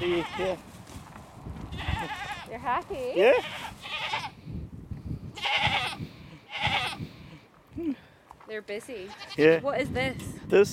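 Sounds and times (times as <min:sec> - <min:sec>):
goats bleating: 0:00.0 - 0:00.6, 0:01.7 - 0:02.5, 0:03.2 - 0:04.4, 0:05.4 - 0:07.4, 0:09.0 - 0:09.6
speech: 0:00.0 - 0:00.8, 0:02.5 - 0:03.8, 0:07.8 - 0:10.7
low rumbling farmyard background: 0:00.0 - 0:09.7.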